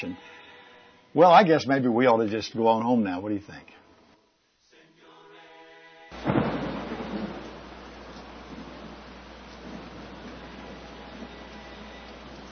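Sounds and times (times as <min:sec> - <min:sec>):
speech: 0:00.0 - 0:00.4, 0:01.2 - 0:03.8
deep rumble of thunder: 0:06.2 - 0:12.5
steady rain falling outside: 0:06.2 - 0:12.5.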